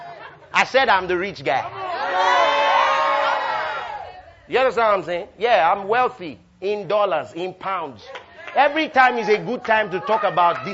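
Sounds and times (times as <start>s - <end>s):
speech: 0.6s - 2.4s, 4.5s - 10.7s
group of friends shouting and cheering: 1.6s - 4.4s, 8.0s - 10.7s.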